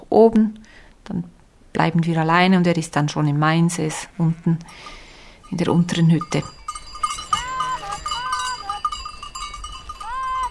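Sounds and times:
speech: 0.2s - 6.6s
sheep bleating on a Swiss Alpine pasture: 3.9s - 4.7s, 7.1s - 9.0s, 9.8s - 10.5s
cowbells tinkling on a Swiss Alpine pasture: 4.7s - 10.5s.

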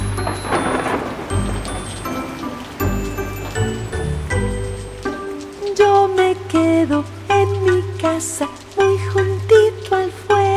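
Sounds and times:
rumbling thunder: 0.0s - 5.2s
heavy rain: 0.0s - 10.5s
music: 0.0s - 10.5s.

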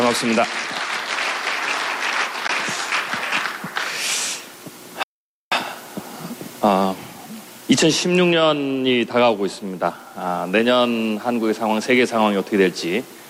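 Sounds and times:
audience at an economics seminar applauding to welcome a speaker: 0.0s - 4.3s
speech: 0.1s - 0.8s, 6.6s - 7.0s, 7.8s - 13.2s.

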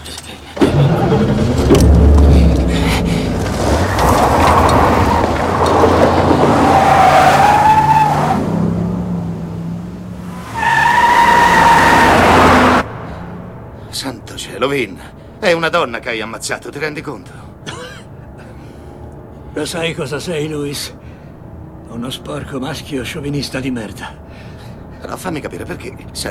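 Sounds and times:
car tires skidding: 0.5s - 15.3s
car engine starting and roaring off at speed: 0.5s - 15.4s
speech: 14.6s - 17.4s, 19.6s - 21.0s, 22.0s - 24.2s, 25.0s - 26.2s.

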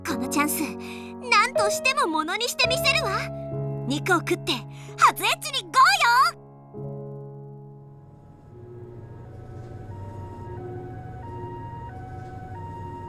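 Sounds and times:
speech: 0.2s - 6.4s
low traffic rumble: 7.8s - 13.0s
ambulance siren wailing in two alternating tones: 8.4s - 13.0s.

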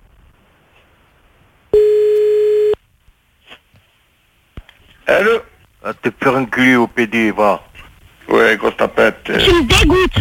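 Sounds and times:
buzzy telephone tone while a call is placed back: 1.7s - 2.8s
speech: 5.2s - 7.7s, 8.3s - 10.1s.

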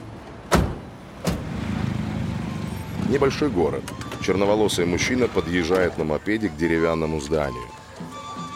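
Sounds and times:
car doors shutting as people get into a car: 0.5s - 1.8s
speech: 3.1s - 7.8s.

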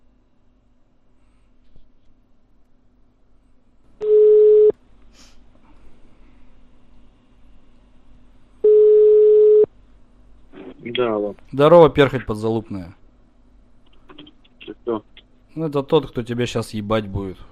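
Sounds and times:
phone line ringing tone after a number is dialed: 4.0s - 4.7s, 8.6s - 9.7s
speech: 11.0s - 13.0s, 15.6s - 17.5s.

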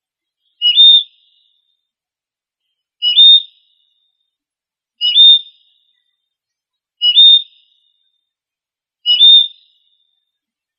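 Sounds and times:
bird high whistled chirps: 0.3s - 1.8s, 2.6s - 4.4s, 5.0s - 8.3s, 9.0s - 10.7s.

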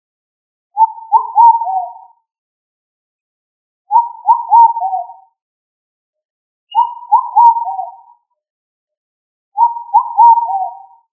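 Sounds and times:
pigeon Columbidae cooing: 0.8s - 2.0s, 3.9s - 5.2s, 6.8s - 8.1s, 9.6s - 10.9s.

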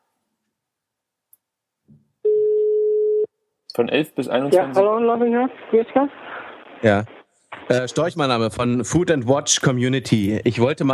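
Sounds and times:
steady mid-pitched telephone tone while a call is being placed: 2.2s - 3.3s
speech: 3.8s - 10.9s.

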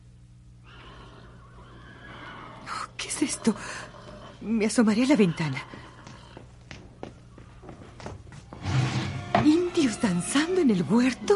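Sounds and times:
low steady hum: 0.0s - 11.3s
horse neighing wildly at night: 0.6s - 6.4s
speech: 3.2s - 5.8s, 10.0s - 11.3s.

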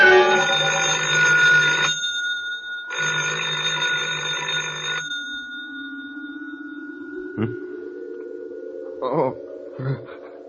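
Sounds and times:
telephone ringing with buzzy bell bursts: 0.1s - 8.5s
quieter voice-like tone: 7.0s - 10.4s.

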